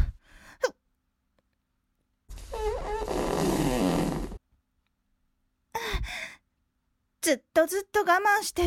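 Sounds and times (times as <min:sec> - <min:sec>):
sputtering fart: 0:02.4 - 0:04.4
speech: 0:07.3 - 0:08.6.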